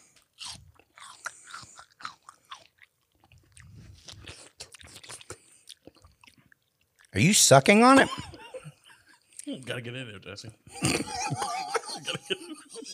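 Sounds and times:
crunchy bites and wet chewing of food: 0.0 - 7.1
speech: 7.2 - 8.3, 9.6 - 11.6
laughter: 7.9 - 9.2, 10.7 - 12.9.

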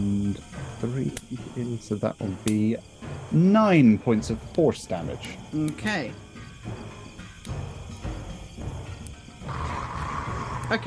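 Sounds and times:
speech: 0.0 - 6.8
wolf roaring: 9.4 - 10.8.

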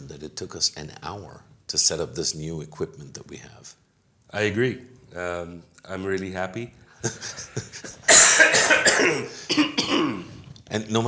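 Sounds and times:
speech: 0.3 - 11.0
chesty cough of a person recovering from a chest infection: 8.0 - 10.4.

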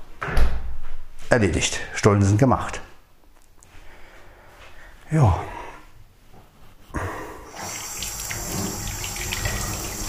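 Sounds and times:
speech: 1.3 - 2.9, 5.1 - 5.6
running tap water rinsing hands at a sink: 7.5 - 10.0.

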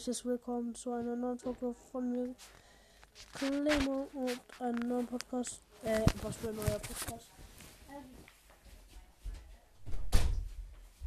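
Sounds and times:
speech: 0.0 - 8.2
faint rustling and handling noise: 0.9 - 9.7
door shutting with a thud: 9.8 - 10.6.

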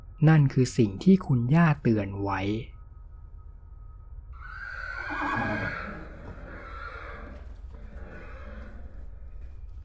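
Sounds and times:
speech: 0.2 - 2.7
large black horse neighing: 4.4 - 9.2
large black horse snorting: 5.0 - 9.2.

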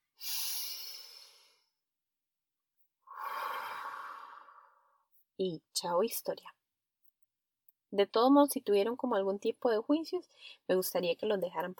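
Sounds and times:
deep breathing in and out: 0.2 - 1.8, 3.1 - 5.0
speech: 5.4 - 6.6, 7.9 - 11.7.

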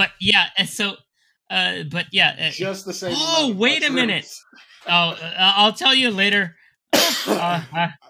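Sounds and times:
speech: 0.0 - 8.0
harsh raspy throaty cough: 7.0 - 7.8.

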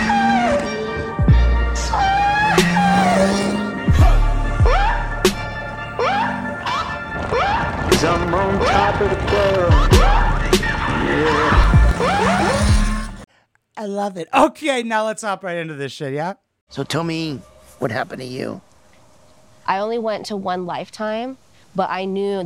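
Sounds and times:
motorcycle engine revving: 0.0 - 13.2
motorcycle tire squeals: 0.0 - 13.2
speech: 9.0 - 10.0, 13.8 - 18.7, 19.7 - 22.4.

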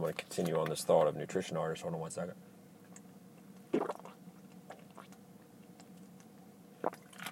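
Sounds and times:
speech: 0.0 - 2.6
person gulping water: 3.7 - 5.2, 6.8 - 7.3
faint mouth noises: 3.8 - 5.2.

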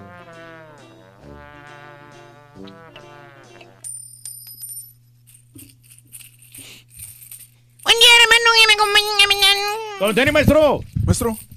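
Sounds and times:
sustained tonal music: 0.0 - 3.9
speech: 2.6 - 2.8, 8.8 - 11.5
coins received as tips clinking while being counted: 2.7 - 10.4, 11.2 - 11.5.

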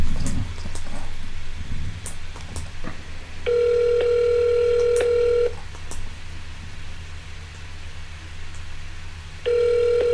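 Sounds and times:
low hum: 0.0 - 10.1
phone ringback tone on a call to a hotel in Ukraine: 3.5 - 5.6, 9.5 - 10.1.

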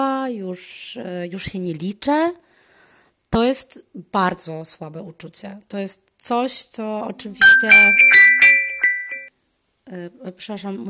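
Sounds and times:
speech: 0.0 - 2.5, 3.3 - 8.6, 9.9 - 10.8
phone ringtone with bright tinkling electronic melody: 7.4 - 9.3.

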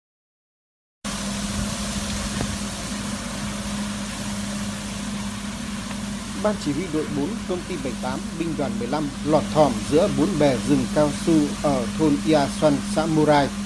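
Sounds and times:
leaf blower machines droning in rubber plantation: 1.1 - 13.6
speech: 6.4 - 13.6.

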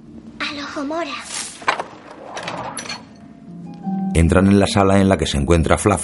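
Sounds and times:
speech: 0.7 - 1.4, 4.2 - 6.0
door creaking as it swings open: 1.6 - 3.9.

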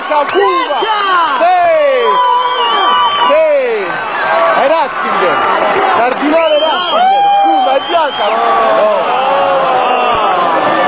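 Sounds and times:
huge outdoor crowd of pilgrims cheering and shouting in a square: 0.0 - 10.8.

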